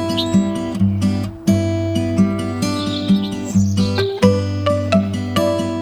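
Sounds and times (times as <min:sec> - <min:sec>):
bird chirping: 0:00.0 - 0:05.7.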